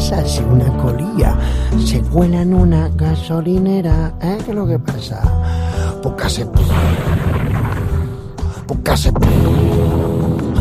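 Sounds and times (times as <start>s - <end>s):
speech: 0.1s - 7.8s, 8.7s - 10.5s
explosion of an underground gas pipe beneath an oil refinery in Texas set off by a spark: 6.6s - 8.6s, 9.2s - 10.5s
sharp crackling bursts of a gas pipe explosion: 6.6s - 8.6s, 9.2s - 10.5s.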